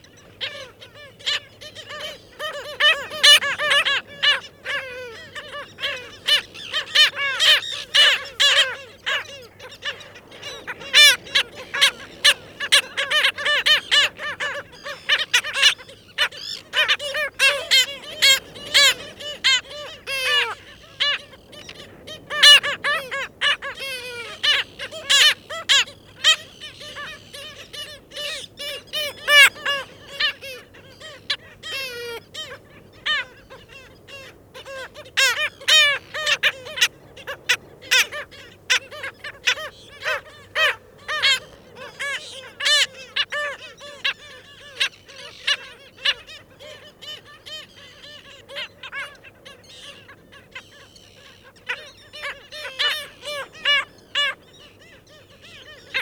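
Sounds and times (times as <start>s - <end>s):
Black Skimmer colony calling: 0.0s - 56.0s.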